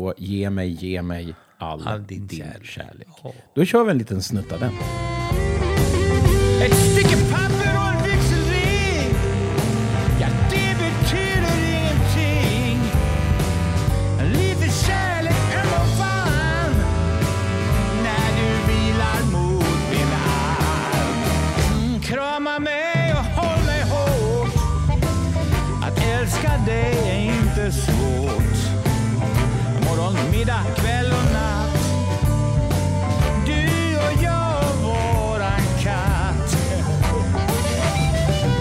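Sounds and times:
speech: 0:00.0 - 0:05.5, 0:06.6 - 0:08.0
old rock song with full band and driving beat: 0:04.7 - 0:38.5
singing voice in old rock song: 0:05.8 - 0:13.4, 0:14.2 - 0:17.0, 0:17.7 - 0:32.1, 0:33.2 - 0:38.5.

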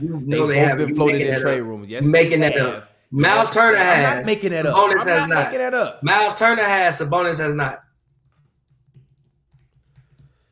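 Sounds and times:
low steady hum: 0:00.0 - 0:05.5
speech: 0:00.0 - 0:07.8
clicking of keys on a computer keyboard: 0:07.9 - 0:10.5.

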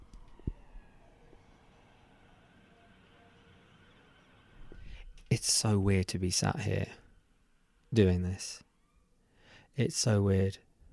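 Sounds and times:
emergency vehicle siren wailing passing outside: 0:00.0 - 0:04.9, 0:08.2 - 0:09.2
speech: 0:05.3 - 0:07.0, 0:07.9 - 0:08.6, 0:09.8 - 0:10.7.

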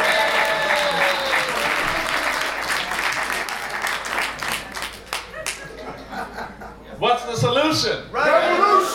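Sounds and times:
audience applause for a birthday: 0:00.0 - 0:05.6
laughter: 0:04.7 - 0:07.0
speech: 0:07.7 - 0:08.4.

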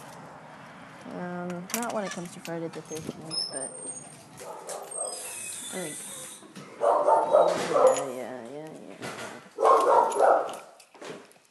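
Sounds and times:
speech: 0:01.1 - 0:04.6, 0:05.7 - 0:06.1
large dog drawn-out whining yelp: 0:03.6 - 0:08.1, 0:09.6 - 0:10.5
large pit bull dog barking: 0:04.4 - 0:05.2, 0:06.8 - 0:08.1, 0:09.6 - 0:10.7.

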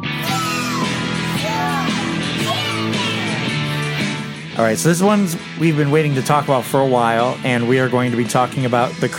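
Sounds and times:
children screaming and shrieking: 0:00.1 - 0:03.8
speech: 0:04.6 - 0:09.1.

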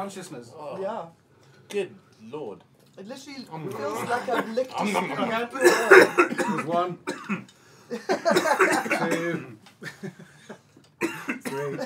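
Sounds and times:
speech: 0:00.0 - 0:11.8
laughter: 0:03.6 - 0:06.9, 0:07.9 - 0:10.6
person coughing into a microphone: 0:05.6 - 0:07.5, 0:08.2 - 0:09.6, 0:11.0 - 0:11.8.

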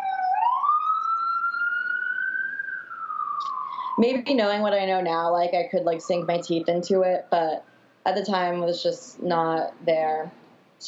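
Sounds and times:
wailing siren of a passing emergency vehicle: 0:00.0 - 0:07.9
faint hum of traffic: 0:02.3 - 0:10.8
speech: 0:04.0 - 0:10.8.

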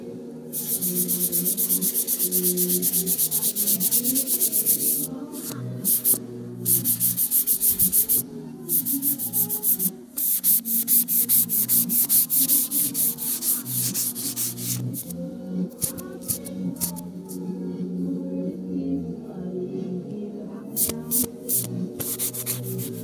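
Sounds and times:
low steady humming drone: 0:00.0 - 0:23.0
sanding with a harsh bright scraping hiss in long strokes: 0:00.6 - 0:15.1, 0:20.8 - 0:23.0.

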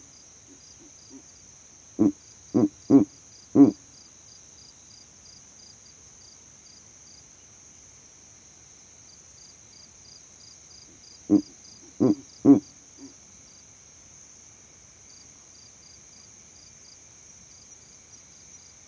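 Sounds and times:
high insect drone in savanna: 0:00.0 - 0:18.8
male Verreaux's eagle owl grunt in a savanna tree: 0:02.0 - 0:03.8, 0:11.3 - 0:13.2.

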